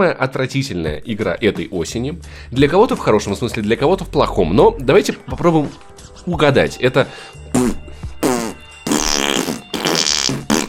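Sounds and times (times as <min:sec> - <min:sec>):
speech: 0:00.0 - 0:07.8
fart sound effects: 0:07.5 - 0:10.6.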